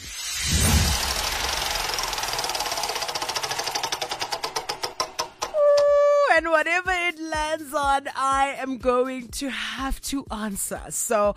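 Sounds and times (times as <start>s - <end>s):
prize wheel spinning and clicking: 0.7s - 5.8s
speech: 6.8s - 11.3s.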